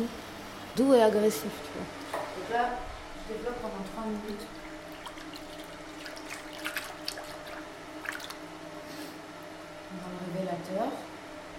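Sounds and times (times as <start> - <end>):
steady low hum: 0.0 - 11.5
speech: 0.8 - 4.6, 9.9 - 11.1
water dripping and splashing in a film photography darkroom: 3.8 - 8.4.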